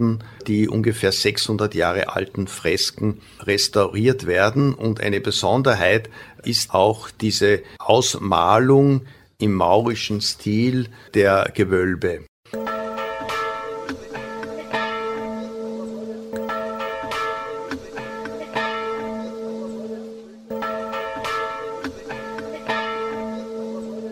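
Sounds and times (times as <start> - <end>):
speech: 0.0 - 12.7
church bells ringing from the church tower in Zettwing: 12.5 - 24.1.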